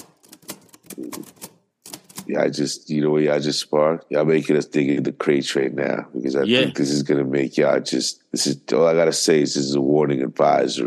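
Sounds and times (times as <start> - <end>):
typewriter clacking: 0.0 - 2.3
speech: 1.0 - 1.4, 2.3 - 10.8.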